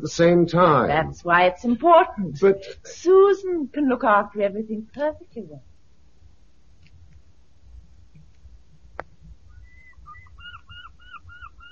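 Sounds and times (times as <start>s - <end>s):
speech: 0.0s - 5.7s
birds calling in short rising-and-falling chirps: 9.5s - 11.6s.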